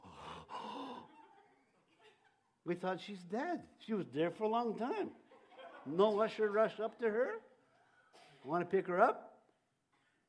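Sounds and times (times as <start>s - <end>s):
person imitating the shocked gasp of a crowd: 0.0s - 1.1s
speech: 2.6s - 5.2s, 5.8s - 7.5s, 8.4s - 9.3s.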